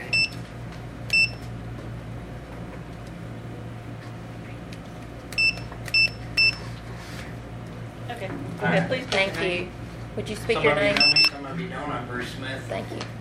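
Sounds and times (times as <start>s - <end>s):
steady low hum: 0.0s - 13.1s
digital meeting timer short electronic beeps as it is reset: 0.1s - 0.4s, 5.4s - 6.6s, 11.0s - 11.4s
speech: 8.7s - 13.1s.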